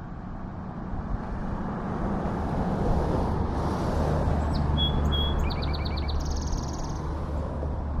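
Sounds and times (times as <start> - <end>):
traffic noise: 0.0 - 7.9
song sparrow singing in a yard: 4.5 - 7.1.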